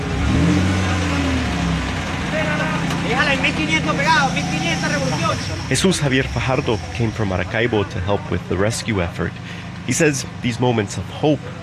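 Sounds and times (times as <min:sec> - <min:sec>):
heavy truck engine revving pulling a metal gate: 0:00.0 - 0:11.6
excited voices of a rescue crew: 0:02.3 - 0:11.6
speech: 0:03.3 - 0:11.6
sharp high squeals: 0:03.4 - 0:07.5.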